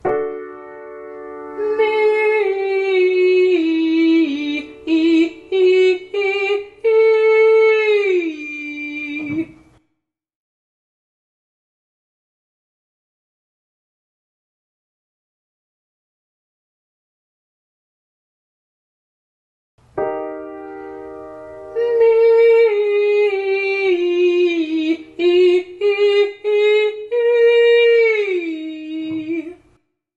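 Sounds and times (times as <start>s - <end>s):
person singing legato and staccato ascending to high G: 1.6s - 9.7s, 21.8s - 29.7s.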